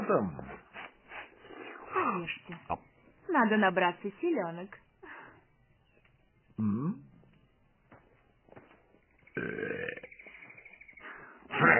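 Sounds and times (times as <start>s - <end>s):
speech: 0.1s - 0.6s, 2.0s - 4.8s, 6.6s - 7.1s, 9.4s - 10.1s
loud low burps: 6.6s - 7.1s, 9.3s - 10.2s, 11.5s - 11.7s.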